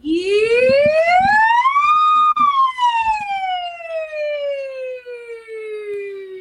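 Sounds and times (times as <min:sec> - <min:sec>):
singer's voice imitating a siren in a vocal exercise: 0:00.0 - 0:06.3
soft low knocks: 0:00.1 - 0:03.4.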